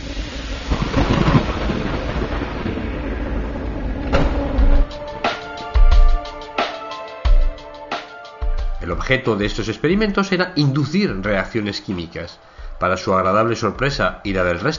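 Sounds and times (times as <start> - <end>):
sharp loud thunder cracks and booms: 0.0 - 6.9
deep rolling thunder from a thunderstorm: 0.0 - 7.7
steady rain-like hiss of a thunderstorm: 0.0 - 14.7
speech: 9.1 - 14.7.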